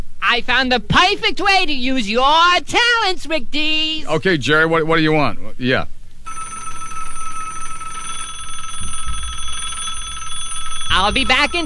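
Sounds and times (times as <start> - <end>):
speech: 0.3 - 6.0, 11.0 - 11.6
bell-style telephone ringing: 6.3 - 11.6.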